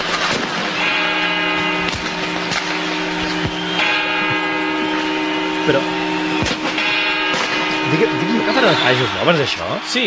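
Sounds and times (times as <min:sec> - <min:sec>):
clock tower bells ringing: 0:00.0 - 0:10.0
outdoor crowd noise: 0:00.0 - 0:10.0
sharp firecracker-like bangs: 0:01.9 - 0:09.3
speech: 0:05.7 - 0:06.0, 0:07.9 - 0:10.0.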